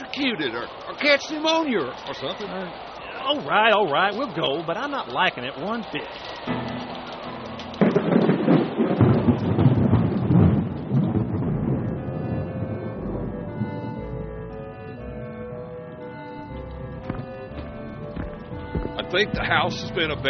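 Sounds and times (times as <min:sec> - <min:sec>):
steady rain: 0:00.0 - 0:14.8
speech: 0:00.2 - 0:06.6, 0:19.2 - 0:20.2
thunder rumbling in a heavy thunderstorm: 0:07.8 - 0:14.4.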